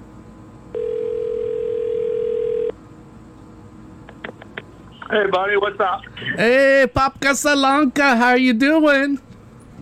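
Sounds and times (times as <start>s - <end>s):
ringback tone from an outgoing phone call: 0.8s - 2.7s
speech: 5.1s - 9.3s.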